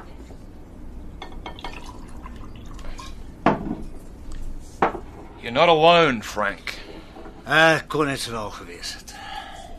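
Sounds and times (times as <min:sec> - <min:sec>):
brandy poured into a glass in a bar: 0:01.5 - 0:03.1
speech: 0:05.4 - 0:06.7, 0:07.5 - 0:09.2.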